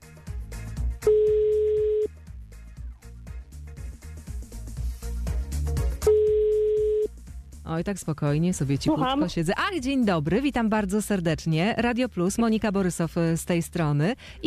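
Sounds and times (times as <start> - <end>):
rhythmic music: 0.0 - 14.4
telephone ringing tone from an outgoing call by a radio presenter: 1.0 - 2.1, 6.0 - 7.1
speech: 7.7 - 14.4.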